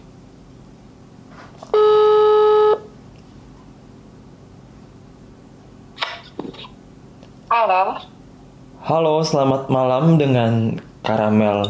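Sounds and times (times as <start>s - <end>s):
phone ringback tone: 1.8s - 2.8s
speech: 7.6s - 8.1s, 8.9s - 11.6s.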